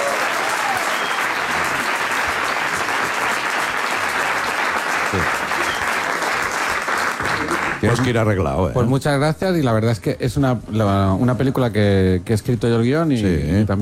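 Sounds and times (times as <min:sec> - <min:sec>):
applause from a sizable crowd: 0:00.0 - 0:08.1
speech: 0:07.8 - 0:13.7.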